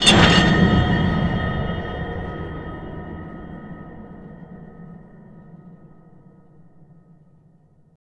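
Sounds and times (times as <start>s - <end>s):
metal impact hit: 0.0s - 7.3s.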